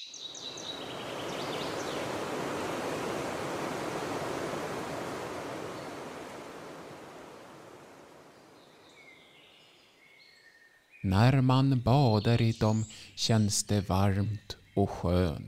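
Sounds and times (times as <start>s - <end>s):
rushing river water: 0.4s - 9.5s
speech: 11.0s - 15.4s.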